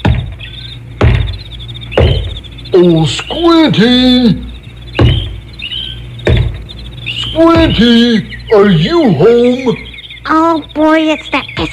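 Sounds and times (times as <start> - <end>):
knocking on a door: 0.0 - 2.4, 5.0 - 5.4, 6.2 - 6.6
speech: 2.8 - 5.1, 7.4 - 11.7.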